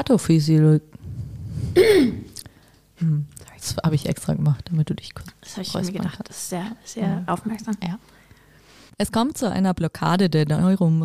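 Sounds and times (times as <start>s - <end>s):
speech: 0.0s - 1.0s, 1.8s - 2.2s, 3.0s - 8.2s, 9.0s - 11.0s
person raspy throat clearing: 1.7s - 2.4s.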